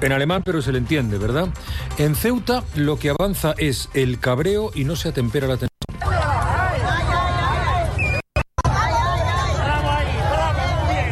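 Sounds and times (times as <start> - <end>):
speech: 0.0 - 5.7
dense crowd of protesters shouting and yelling: 5.9 - 11.1.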